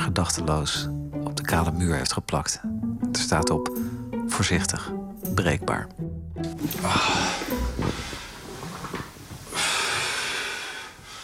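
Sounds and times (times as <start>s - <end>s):
speech: 0.2s - 8.1s
heavy breathing with snorting exhales while stretching: 6.6s - 8.8s, 9.4s - 11.2s
person groaning with strain while stretching: 6.7s - 7.6s.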